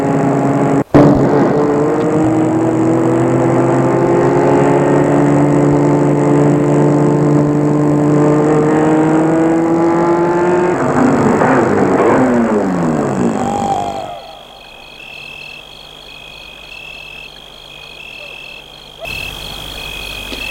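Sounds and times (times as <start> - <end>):
car engine droning while driving on a road: 0.0 - 20.5
faint high chirping in night ambience: 13.4 - 20.5.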